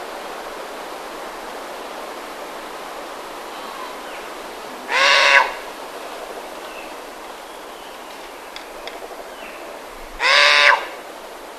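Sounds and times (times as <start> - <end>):
faint hiss: 0.0 - 11.5
Verreaux's sifaka harsh hoarse call: 4.7 - 5.7, 10.2 - 11.0.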